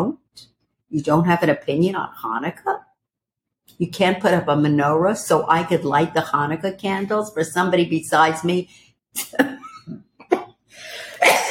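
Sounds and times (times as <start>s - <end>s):
speech: 0.0s - 2.9s, 3.7s - 10.0s
person coughing harshly: 11.0s - 11.4s.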